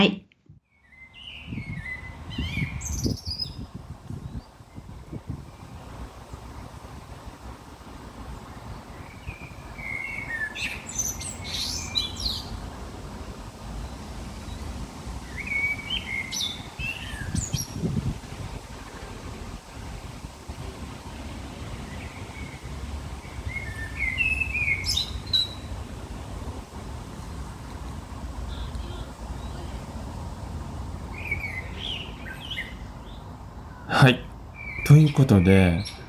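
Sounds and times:
speech: 0.0 - 0.2, 35.2 - 36.0
faint wind: 0.0 - 36.0
birds singing in a park: 0.7 - 6.7, 8.4 - 12.8, 13.8 - 18.8, 21.1 - 26.0, 28.5 - 29.9, 31.1 - 36.0.

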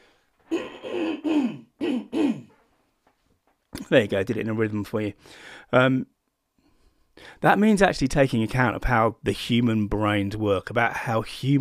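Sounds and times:
person clearing throat: 0.5 - 2.6
person coughing: 0.5 - 2.6
speech: 3.9 - 6.2, 7.2 - 11.5.

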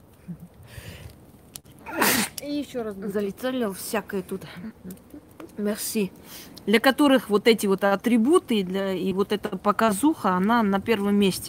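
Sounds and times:
quiet intake of breath: 0.6 - 1.2, 6.2 - 6.6
loud sneeze: 1.8 - 2.4
speech: 2.4 - 11.4.

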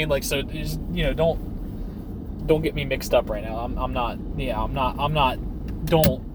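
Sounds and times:
speech: 0.0 - 1.5, 2.4 - 6.3
engine and road rumble inside a moving car: 0.0 - 6.3.

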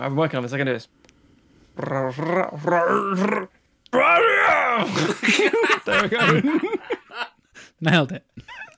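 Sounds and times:
speech: 0.0 - 1.1, 1.8 - 8.5
man's voice imitating a creature's frustrated roar: 1.8 - 5.1
laughter: 4.8 - 7.4.

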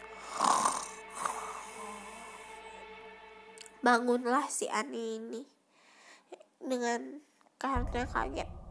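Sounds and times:
rough rattling snoring: 0.2 - 2.4
speech: 3.8 - 5.6, 6.6 - 8.5.

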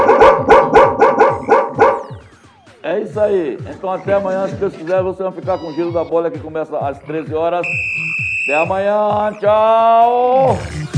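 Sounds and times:
dogs barking: 0.0 - 2.2
speech: 3.2 - 10.9.

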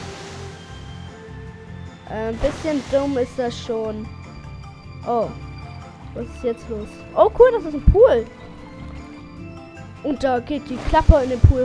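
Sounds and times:
video game water geyser gushing from the ground: 0.0 - 4.1, 10.6 - 11.6
speech: 2.1 - 4.2, 5.0 - 5.5, 6.1 - 8.4, 10.0 - 11.6.

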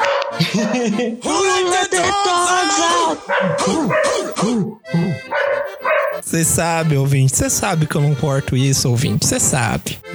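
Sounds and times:
dog barking and yipping: 0.0 - 0.9, 3.2 - 4.4, 5.3 - 6.2
laughter: 0.0 - 5.3
speech: 0.5 - 5.4, 6.2 - 10.1.

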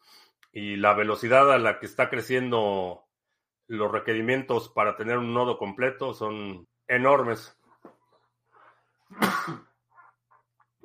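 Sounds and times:
speech: 0.5 - 3.0, 3.7 - 7.6, 9.1 - 9.7
person sneezing: 9.1 - 9.8.

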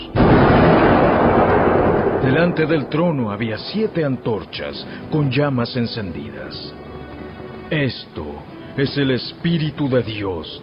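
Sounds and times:
deep heavy rumble of thunder: 0.0 - 5.6
speech: 2.4 - 6.9, 7.7 - 10.6.

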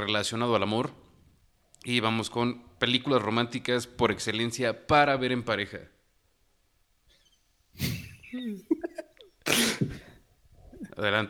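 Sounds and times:
speech: 0.0 - 1.1, 1.8 - 6.0, 7.8 - 8.7, 11.0 - 11.2
person sneezing: 7.8 - 8.5, 9.4 - 10.2
people laughing: 7.8 - 9.3.

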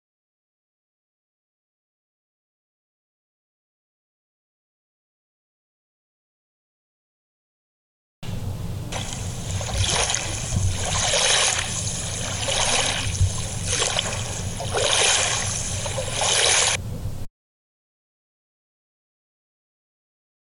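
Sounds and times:
waves lapping against a boat's stern: 8.9 - 16.8.

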